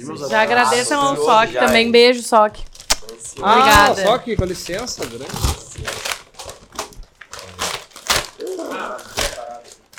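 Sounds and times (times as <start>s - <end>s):
speech: 0.0s - 6.0s
paper gift bags rustling and crinkling: 2.7s - 9.9s.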